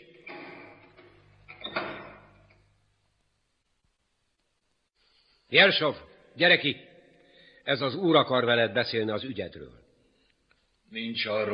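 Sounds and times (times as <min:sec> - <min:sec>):
heavy prison cell door being opened: 0:00.0 - 0:02.6
quiet room noise: 0:00.0 - 0:11.5
speech: 0:05.5 - 0:06.9, 0:07.7 - 0:09.8, 0:10.9 - 0:11.5.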